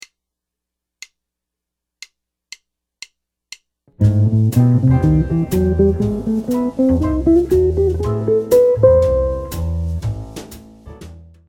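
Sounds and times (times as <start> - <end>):
jazz guitar playing arpeggio approach notes: 4.0 - 10.0.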